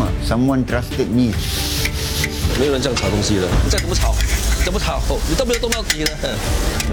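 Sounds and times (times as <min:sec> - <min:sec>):
speech: 0:00.3 - 0:01.6, 0:02.5 - 0:06.9
sambal sizzling while stir-frying in a pan: 0:01.4 - 0:06.9.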